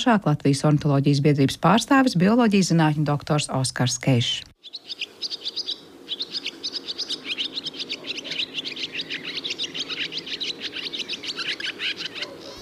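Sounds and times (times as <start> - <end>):
speech: 0.0 - 5.4
swallow twittering song: 4.2 - 12.6.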